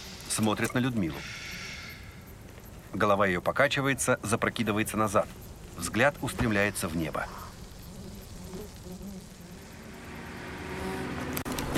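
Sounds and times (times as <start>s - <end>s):
speech: 0.4s - 1.5s, 2.9s - 7.4s
captured car engine rumbling while driving past a group of soldiers: 9.3s - 11.7s.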